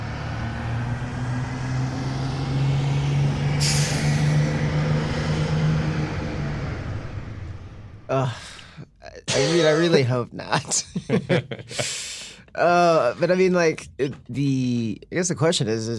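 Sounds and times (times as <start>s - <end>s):
bus engine rumbling: 0.0s - 14.9s
pneumatic burst: 3.6s - 4.3s
bus air-brake hiss: 3.6s - 4.4s
speech: 8.2s - 8.4s, 9.4s - 12.0s, 12.6s - 15.9s
laughter: 9.3s - 12.1s.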